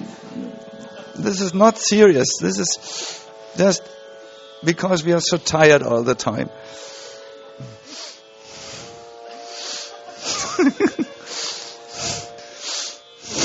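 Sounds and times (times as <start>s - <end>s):
laughter: 0.0s - 2.8s, 7.0s - 8.0s, 9.3s - 12.3s
speech: 0.4s - 4.0s, 4.6s - 6.9s
rapid deep hissing breathing during a breathing exercise: 2.6s - 4.5s, 6.5s - 13.4s
person grunting: 7.6s - 7.8s.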